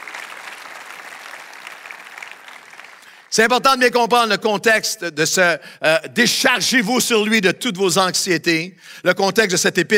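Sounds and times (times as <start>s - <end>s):
church audience applauding during a French-language service: 0.0s - 3.3s
speech: 3.3s - 9.9s.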